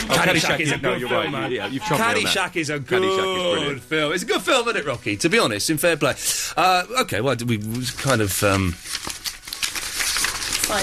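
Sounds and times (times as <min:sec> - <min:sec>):
laughter: 0:00.0 - 0:03.8
speech: 0:00.1 - 0:09.1
papers being shuffled and handled: 0:07.3 - 0:10.8.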